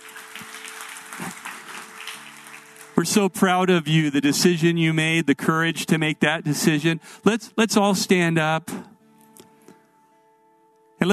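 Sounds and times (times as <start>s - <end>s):
congregation applauding at a church service: 0.0s - 5.2s
speech: 3.0s - 8.9s.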